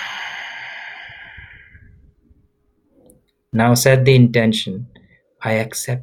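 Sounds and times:
deep exhale during a guided breathing exercise: 0:00.0 - 0:02.2
speech: 0:03.5 - 0:06.0.

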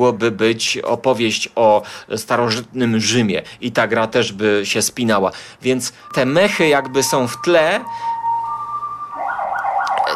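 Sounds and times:
speech: 0:00.0 - 0:08.1
ambulance siren passing outside: 0:05.9 - 0:10.1.

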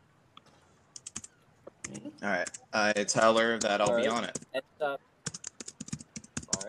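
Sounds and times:
computer keyboard typing: 0:00.9 - 0:04.5, 0:05.3 - 0:06.6
speech: 0:02.2 - 0:05.1.

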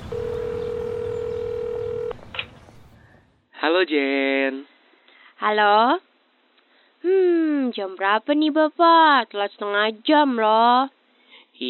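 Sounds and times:
steady telephone tone while placing a call: 0:00.0 - 0:02.3
faint noise: 0:00.0 - 0:11.6
speech: 0:03.6 - 0:04.7, 0:05.4 - 0:06.1, 0:07.0 - 0:11.0.

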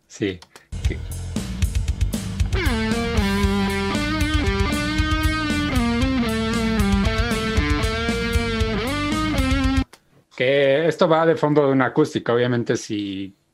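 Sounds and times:
speech: 0:00.2 - 0:01.1, 0:10.4 - 0:13.4
steady drum and backing groove: 0:00.7 - 0:09.9
distorted electric guitar lead melody with bent notes through effects: 0:02.4 - 0:09.9.

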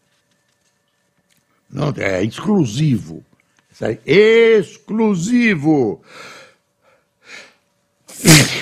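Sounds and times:
speech: 0:01.7 - 0:06.4
person sneezing: 0:08.1 - 0:08.6.

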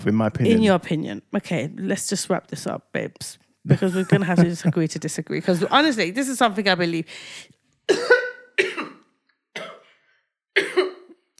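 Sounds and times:
speech: 0:00.0 - 0:08.7
laughter: 0:03.7 - 0:04.9
harsh coughs: 0:07.9 - 0:10.0, 0:10.6 - 0:11.2.

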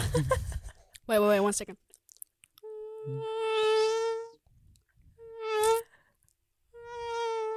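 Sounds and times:
speech: 0:00.2 - 0:00.4, 0:01.1 - 0:01.9, 0:03.0 - 0:03.7
person imitating a mosquito with a nasal whining buzz: 0:02.6 - 0:04.4, 0:05.2 - 0:05.9, 0:06.8 - 0:07.5.

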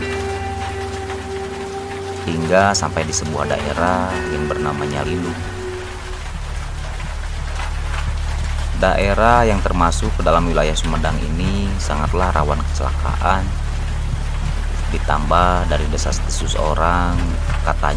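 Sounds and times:
steady rain during a night motorcycle ride near Tomo in Sumedang: 0:00.0 - 0:17.9
speech: 0:02.3 - 0:05.6, 0:08.8 - 0:13.6, 0:14.9 - 0:17.9.

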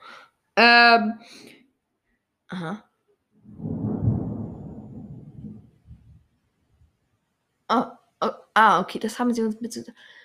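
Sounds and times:
speech: 0:00.6 - 0:01.6, 0:02.5 - 0:02.9, 0:07.7 - 0:07.9, 0:08.6 - 0:10.2
low rolling thunder after lightning: 0:03.4 - 0:06.3.

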